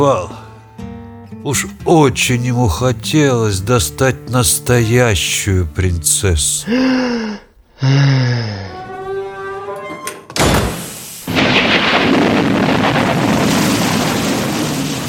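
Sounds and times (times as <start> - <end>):
speech: 0.0 - 0.4, 1.4 - 8.8
heavy steady rain: 11.2 - 15.0
loud thunderclap in a storm: 11.3 - 15.0.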